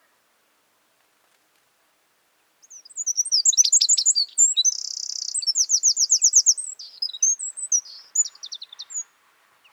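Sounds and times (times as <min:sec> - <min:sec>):
northern wren song: 0:02.6 - 0:09.7.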